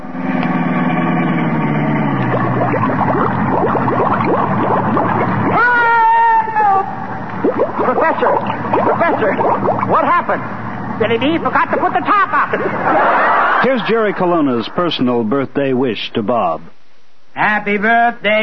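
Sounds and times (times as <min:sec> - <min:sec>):
sealed-up car engine revving: 0:00.0 - 0:05.6
car splashing into a bay with gurgling bubbles: 0:02.2 - 0:05.8, 0:07.4 - 0:10.1
speech: 0:10.3 - 0:16.8, 0:17.4 - 0:18.4
laughter: 0:11.5 - 0:15.0.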